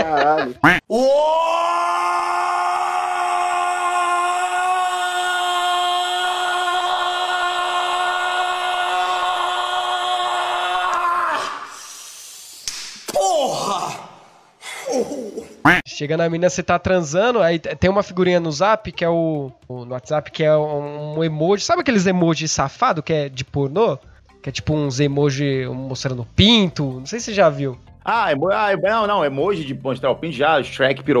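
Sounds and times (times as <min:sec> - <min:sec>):
laughter: 0:00.0 - 0:00.6
man moaning and yelling: 0:00.0 - 0:11.8, 0:13.1 - 0:15.6
speech: 0:00.4 - 0:01.4, 0:16.0 - 0:31.1.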